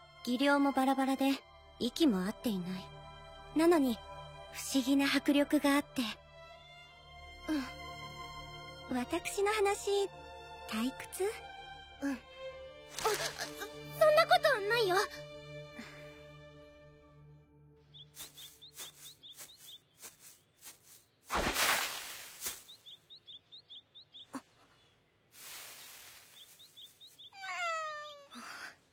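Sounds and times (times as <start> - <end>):
speech: 0.2 - 3.0, 3.6 - 6.2, 7.4 - 7.8, 8.9 - 12.3, 12.9 - 15.3
light chirping: 18.0 - 21.1, 22.4 - 25.0, 25.6 - 28.4
loud rustling noise: 18.2 - 22.8
cat meowing: 27.3 - 28.4.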